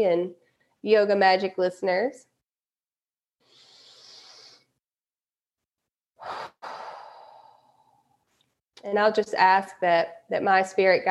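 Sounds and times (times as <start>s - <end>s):
speech: 0.0s - 2.3s, 8.8s - 11.1s
slow deep breath taken to center oneself before a meditation: 3.4s - 4.8s, 6.2s - 8.1s.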